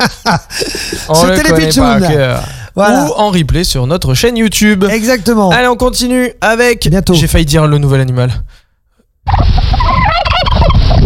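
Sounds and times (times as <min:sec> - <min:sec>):
speech: 0:00.0 - 0:08.6, 0:09.3 - 0:09.7
turkey gobbling: 0:09.3 - 0:11.0.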